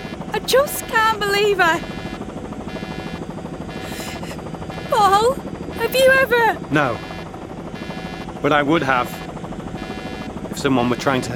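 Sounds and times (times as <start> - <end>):
helicopter engine whining: 0.0 - 11.3
speech: 0.5 - 2.0, 4.9 - 7.1, 8.4 - 9.2, 10.6 - 11.3.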